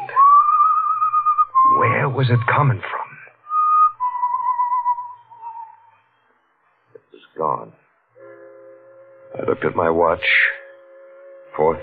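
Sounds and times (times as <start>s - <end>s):
person whistling a short tune in a building: 0.0s - 2.1s, 3.5s - 6.2s
speech: 2.2s - 3.0s, 9.5s - 10.6s.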